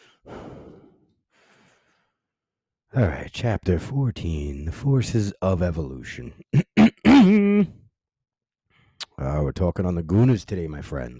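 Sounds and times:
person sitting and catching their breath, breathing heavily: 0.0s - 2.1s
speech: 2.9s - 6.7s, 9.2s - 11.1s.

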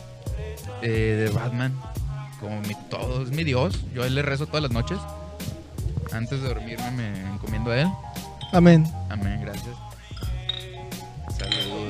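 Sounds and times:
speech: 0.6s - 5.2s, 6.1s - 10.2s
glasses clinking together in a toast: 8.1s - 11.8s.

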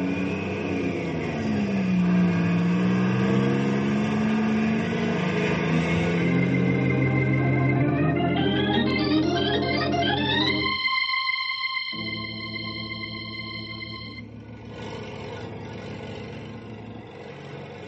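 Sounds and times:
truck engine revving and driving off: 0.0s - 10.8s, 12.0s - 17.8s.

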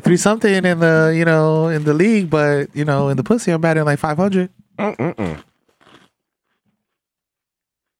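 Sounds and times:
speech: 0.1s - 5.5s
chewing crunches of cheese puff snacks: 5.0s - 6.6s
crunching bite into crunchy cheese puff snacks: 5.2s - 6.6s.

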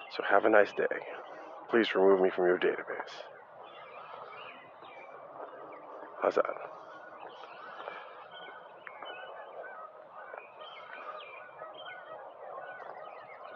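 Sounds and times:
geese honking and squabbling: 0.0s - 13.5s
speech: 0.1s - 3.4s, 6.2s - 6.8s.

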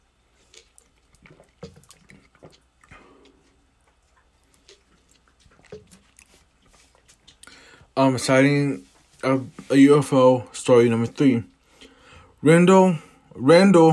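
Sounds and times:
person drinking a glass of water: 0.0s - 8.0s
speech: 8.0s - 11.5s, 12.4s - 13.9s.

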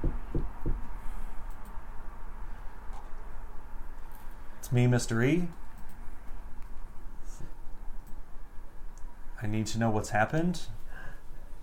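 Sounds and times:
dull knocks on a door: 0.0s - 0.8s
speech: 4.7s - 5.6s, 9.4s - 10.8s.

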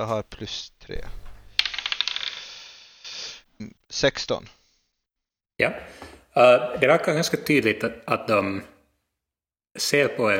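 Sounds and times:
speech: 0.0s - 1.2s, 3.6s - 4.6s, 5.6s - 8.7s, 9.8s - 10.3s
dice tumbling across a hard surface: 1.0s - 2.8s.

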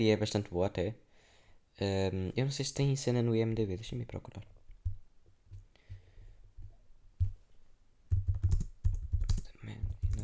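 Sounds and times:
speech: 0.0s - 1.0s, 1.8s - 4.6s
typing on a laptop keyboard: 8.1s - 10.2s.

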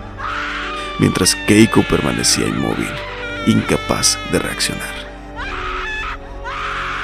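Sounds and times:
speech: 1.0s - 5.0s
woman screaming in horror: 5.4s - 7.0s.

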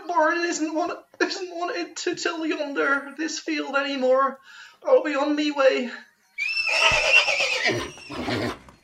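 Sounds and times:
speech: 0.2s - 6.1s, 6.7s - 8.5s
horse neighing: 6.4s - 8.8s
horse snorting: 6.7s - 8.8s.

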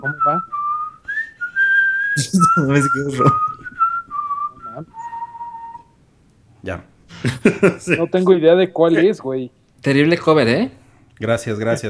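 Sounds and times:
speech: 0.0s - 0.6s, 2.2s - 3.5s, 6.6s - 11.8s
person whistling a movie theme melody: 0.0s - 6.0s
laughter: 2.2s - 4.1s, 7.1s - 8.2s.

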